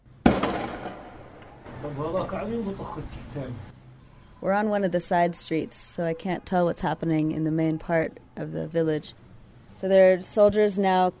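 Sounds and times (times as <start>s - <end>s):
sound bomb going off in a village side street: 0.2s - 1.8s
speech: 1.8s - 3.7s, 4.4s - 9.2s, 9.8s - 11.1s.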